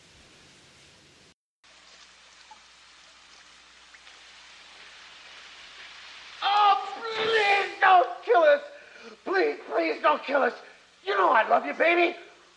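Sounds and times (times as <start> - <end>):
hail falling outside during a storm: 1.8 - 12.5
speech: 10.1 - 12.3.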